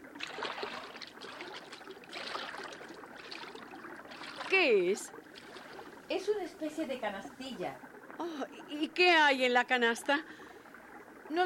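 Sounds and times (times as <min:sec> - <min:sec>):
person wading into a river: 0:00.0 - 0:06.2
speech: 0:04.6 - 0:05.2, 0:06.1 - 0:10.4, 0:11.3 - 0:11.4.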